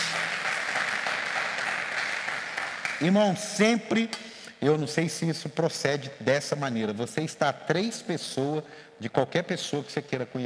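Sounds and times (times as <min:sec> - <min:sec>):
church audience applause: 0:00.0 - 0:03.2
speech: 0:03.0 - 0:10.4.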